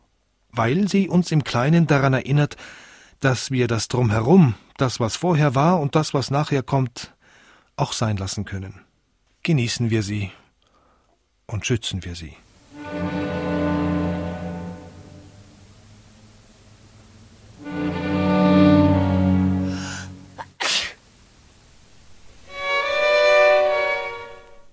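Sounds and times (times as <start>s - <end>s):
speech: 0.6s - 7.2s, 7.8s - 10.4s, 11.5s - 13.2s
sustained musical chords: 12.6s - 20.6s, 22.5s - 24.7s
person sneezing: 20.4s - 21.0s.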